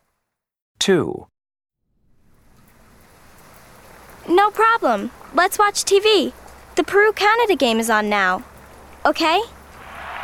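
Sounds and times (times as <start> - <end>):
speech: 0.8 - 1.3, 4.3 - 9.6
rain falling on a gloomy day: 2.2 - 10.2.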